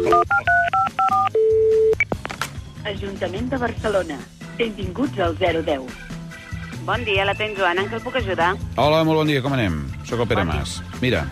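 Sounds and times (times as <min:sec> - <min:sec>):
speech: 0:00.0 - 0:00.7, 0:02.9 - 0:06.0, 0:06.9 - 0:11.3
telephone keypad tones dialling an information line: 0:00.0 - 0:02.0.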